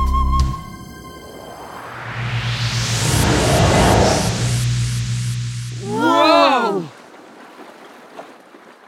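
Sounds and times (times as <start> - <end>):
low steady engine drone: 0.1 - 5.9
rushing water and wave wash: 0.5 - 4.9, 5.7 - 8.8
brief wavering tonal cry: 5.8 - 6.9.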